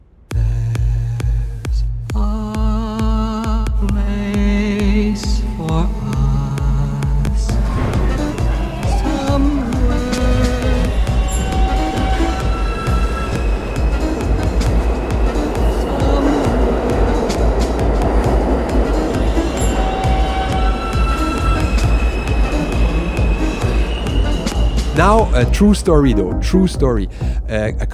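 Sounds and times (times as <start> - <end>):
rumbling hum of moving subway train: 0.0 - 26.5
subway train traction motor inverter whine: 5.4 - 25.6
speech: 25.4 - 27.9.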